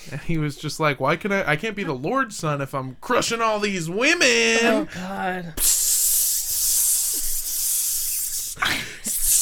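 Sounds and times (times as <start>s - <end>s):
speech: 0.0s - 5.8s
aerosol body spray hissing: 5.6s - 9.4s.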